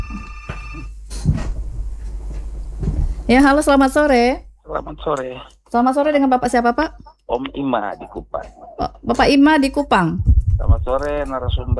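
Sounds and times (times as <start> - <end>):
telephone ringing as a caller joins a radio call-in program: 0.0 - 4.5
telephone line noise bursts: 0.0 - 5.4, 9.1 - 11.7
speech: 3.3 - 11.7.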